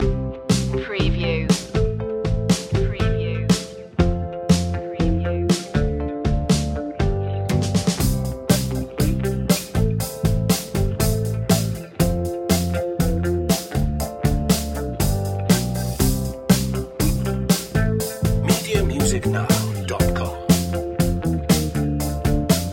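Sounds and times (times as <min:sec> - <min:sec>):
joyful pop instrumental: 0:00.0 - 0:22.7.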